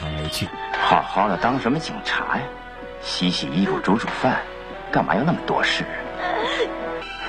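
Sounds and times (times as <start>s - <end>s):
brief voice-like sounds in a dramatized scene: 0.0s - 0.6s
speech: 0.3s - 6.8s.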